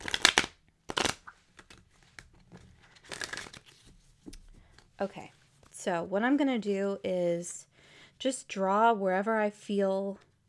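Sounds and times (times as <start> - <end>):
soft taps of a deck of cards settling: 0.0 - 2.3, 3.0 - 3.6
oracle cards being shuffled: 0.0 - 4.9
speech: 5.0 - 10.2.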